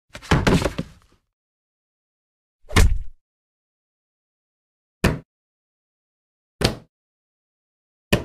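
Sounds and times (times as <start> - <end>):
body impacts: 0.2 - 1.0.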